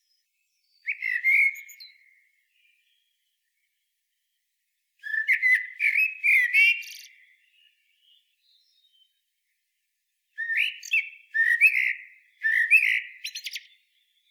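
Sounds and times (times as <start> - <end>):
Eurasian blackbird Turdus merula song: 0.6 - 2.1, 5.0 - 7.3, 10.4 - 14.3.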